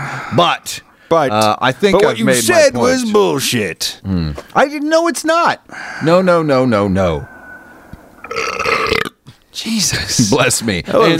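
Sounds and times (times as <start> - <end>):
speech: 0.3 - 7.3, 8.3 - 8.5, 9.6 - 11.1
loud drawn-out burp: 8.2 - 9.2.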